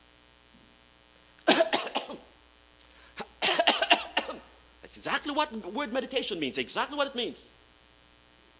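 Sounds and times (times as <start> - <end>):
harsh hacking cough: 1.4 - 2.3, 3.2 - 4.5
speech: 5.0 - 7.6.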